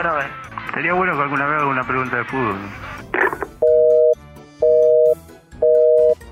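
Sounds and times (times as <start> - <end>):
speech: 0.0 - 3.4
telephone busy signal: 3.6 - 6.2.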